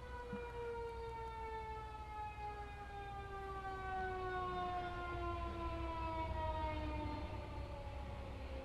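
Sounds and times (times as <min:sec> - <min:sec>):
ambulance siren passing: 0:00.0 - 0:08.6
constant low traffic rumble: 0:00.0 - 0:08.6.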